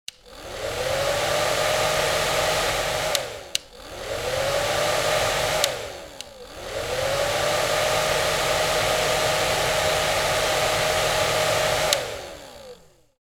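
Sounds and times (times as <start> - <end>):
hair dryer switching on and off: 0.1 - 13.2.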